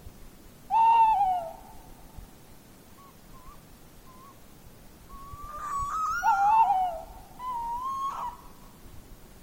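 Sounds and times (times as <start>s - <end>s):
Tawny owl hoot: 0.7s - 1.8s, 3.0s - 4.4s, 5.1s - 8.8s.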